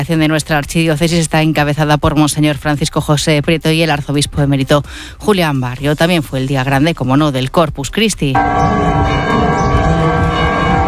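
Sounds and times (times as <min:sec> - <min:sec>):
speech: 0:00.0 - 0:09.6
church bells ringing to mark the start of a Corpus Christi procession in A Coruña: 0:08.4 - 0:10.8.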